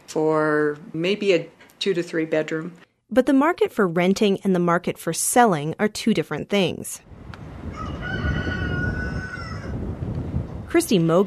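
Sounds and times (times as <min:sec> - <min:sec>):
speech: 0:00.1 - 0:07.1, 0:10.7 - 0:11.2
rooster crowing at a single-family home just outside Douglas: 0:07.6 - 0:09.9.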